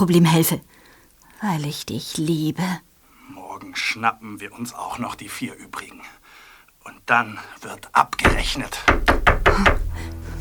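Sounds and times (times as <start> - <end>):
speech: 0.0 - 0.8, 1.4 - 6.2, 6.8 - 10.2
firm knocking on a door: 8.2 - 10.0.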